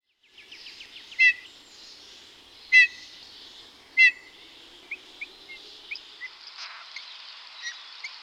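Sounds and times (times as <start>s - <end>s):
bullfinch at a bird feeder: 0.4s - 6.9s.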